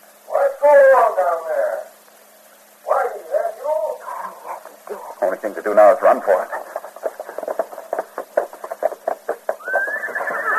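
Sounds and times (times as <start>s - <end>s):
speech: 0.6s - 1.7s, 5.3s - 6.6s
horse hooves clopping: 4.2s - 10.5s
horse whinnying: 9.5s - 10.5s.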